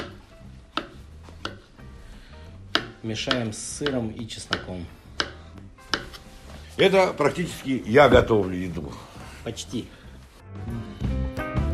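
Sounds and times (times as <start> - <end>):
knife chopping mushroom stems on a board: 0.0 - 1.8, 2.6 - 6.3
speech: 3.0 - 5.0, 6.8 - 10.7.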